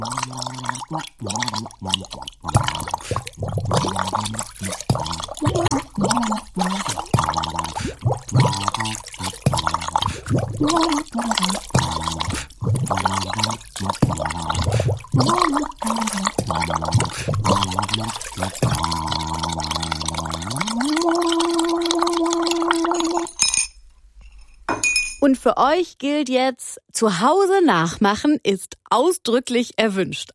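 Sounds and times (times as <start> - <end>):
speech: 0.0 - 3.2, 25.5 - 30.3
bubbles blown through a straw into sink water: 0.0 - 23.4.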